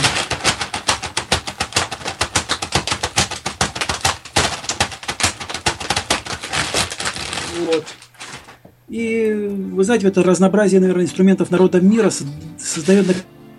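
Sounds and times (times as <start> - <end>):
polyethylene plastic bag crinkling and scrunched: 0.0 - 8.7
speech: 7.7 - 8.0, 8.9 - 13.4.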